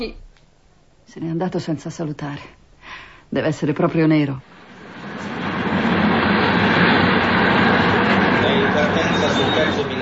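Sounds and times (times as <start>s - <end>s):
speech: 0.0s - 0.2s, 1.1s - 2.6s, 3.3s - 4.5s
train rumbling at a railway station: 3.4s - 9.9s.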